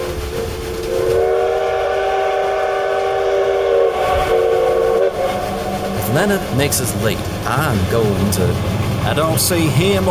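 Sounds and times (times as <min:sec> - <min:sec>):
steam train whistle blowing: 0:00.0 - 0:06.5
low rumbling rail noise: 0:00.0 - 0:10.0
speech: 0:06.2 - 0:10.0.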